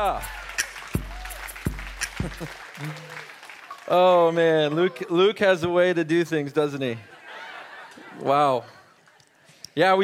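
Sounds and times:
speech: 0:00.0 - 0:00.4, 0:02.2 - 0:07.2, 0:08.2 - 0:08.8, 0:09.8 - 0:10.0
church audience clapping in a large room: 0:00.0 - 0:05.1
church audience hooting and cheering: 0:00.0 - 0:05.4
laughter: 0:02.0 - 0:03.3, 0:04.7 - 0:05.4, 0:06.9 - 0:09.6.

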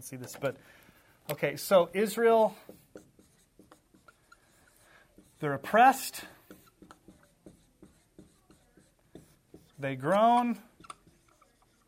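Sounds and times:
speech: 0:00.0 - 0:02.8, 0:05.4 - 0:06.3, 0:09.8 - 0:10.7
marker squeaking on a whiteboard while drawing a diagram: 0:02.4 - 0:11.8
marker tapping against a whiteboard: 0:02.5 - 0:05.4, 0:06.4 - 0:11.8.

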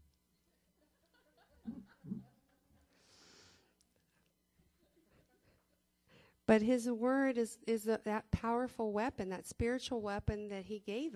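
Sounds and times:
laughter: 0:00.8 - 0:03.0
heavy breathing into the microphone: 0:02.9 - 0:03.8
speech: 0:06.5 - 0:11.1.

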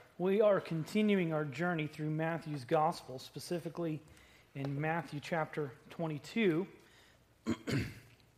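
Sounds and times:
speech: 0:00.2 - 0:06.8, 0:07.4 - 0:08.0
man clearing his throat after straining his voice on a high sung note: 0:07.4 - 0:08.2.

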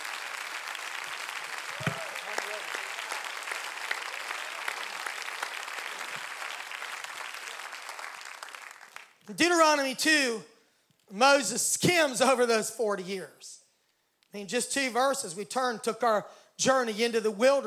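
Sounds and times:
large crowd applauding in a big room: 0:00.0 - 0:09.2
faint voices and cheers: 0:01.7 - 0:03.4
speech: 0:09.3 - 0:10.5, 0:11.1 - 0:13.6, 0:14.3 - 0:17.6.

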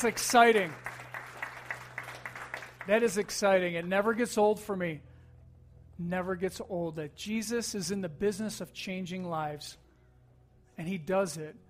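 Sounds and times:
speech: 0:00.0 - 0:01.0, 0:02.9 - 0:05.1, 0:06.0 - 0:09.8, 0:10.8 - 0:11.6
audience applause after a prayer: 0:00.0 - 0:03.3
low electrical hum: 0:00.0 - 0:11.6.

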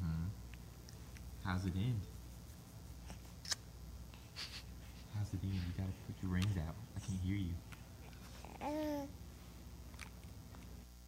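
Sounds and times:
speech: 0:01.5 - 0:02.1, 0:05.3 - 0:07.8, 0:08.6 - 0:09.2
baby cooing: 0:08.4 - 0:09.1.

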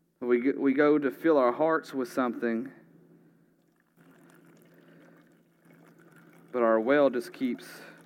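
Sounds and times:
speech: 0:00.3 - 0:02.8, 0:06.8 - 0:07.9
water pouring from a bottle into a container: 0:03.6 - 0:08.0.

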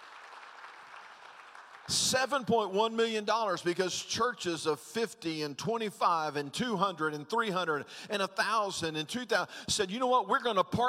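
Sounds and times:
church audience clapping as an offering: 0:00.0 - 0:02.7
speech: 0:01.9 - 0:10.8.

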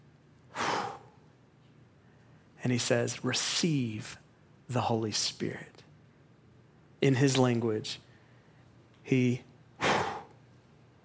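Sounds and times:
breath exhaled: 0:00.5 - 0:01.2, 0:09.8 - 0:10.4
speech: 0:02.6 - 0:05.8, 0:07.0 - 0:08.0, 0:09.0 - 0:09.5.

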